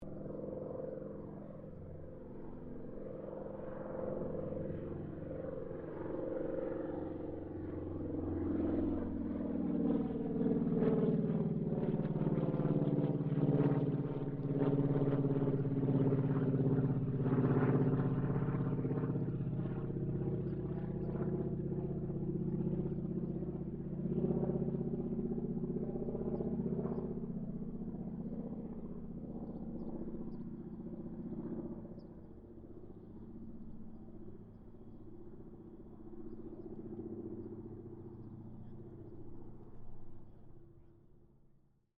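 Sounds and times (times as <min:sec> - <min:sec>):
distant AT-6D Harvard MK III aircraft passing: 0:00.0 - 0:41.6.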